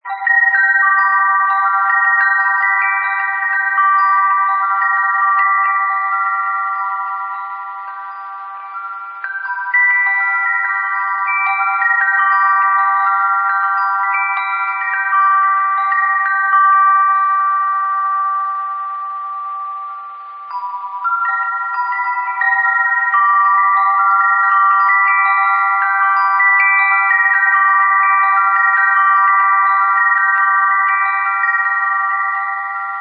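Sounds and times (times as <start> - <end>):
wind chime in a blues scale: 0.0 - 32.9.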